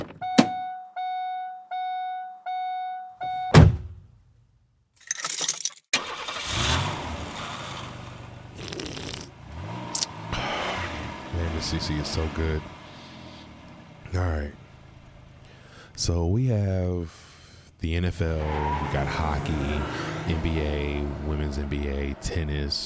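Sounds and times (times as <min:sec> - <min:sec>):
car door chime beeping: 0:00.1 - 0:03.6
heavy car door slamming shut: 0:03.5 - 0:04.0
car engine cranking and running: 0:06.0 - 0:16.0, 0:18.2 - 0:22.8
speech: 0:11.6 - 0:12.8, 0:14.2 - 0:14.6, 0:16.0 - 0:22.8.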